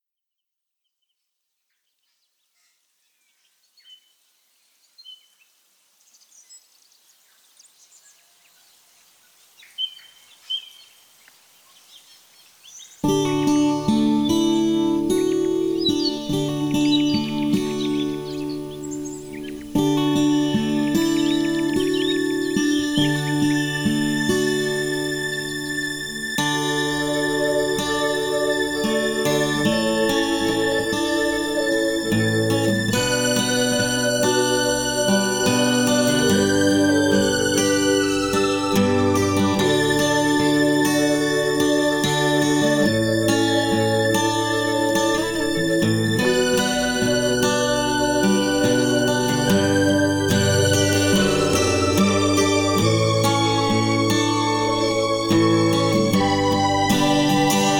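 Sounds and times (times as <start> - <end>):
ambient music melody full mix: 13.1 - 57.7.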